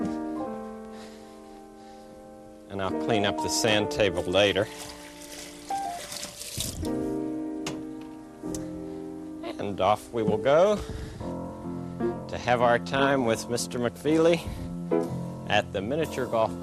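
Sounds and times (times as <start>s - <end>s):
gentle music: 0.0s - 16.6s
man speaking calmly: 2.7s - 4.8s, 9.5s - 10.9s, 12.3s - 14.7s, 15.5s - 16.6s
speech: 2.7s - 5.0s, 9.8s - 11.0s, 12.4s - 16.6s
water being poured out: 4.2s - 7.0s.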